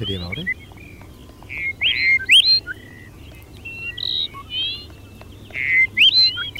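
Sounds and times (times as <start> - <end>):
speech: 0.0 - 0.8
Dupont's lark singing thin rising whistled notes: 0.0 - 6.5.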